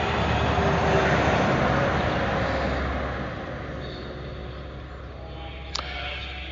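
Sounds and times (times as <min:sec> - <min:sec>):
heavy truck rumbling past on a state route: 0:00.0 - 0:05.1.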